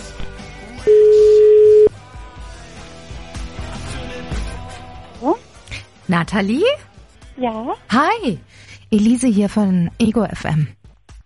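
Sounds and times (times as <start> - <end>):
busy music bed: 0.0 - 11.2
telephone tone of an outgoing call: 0.8 - 1.9
speech: 6.1 - 10.8.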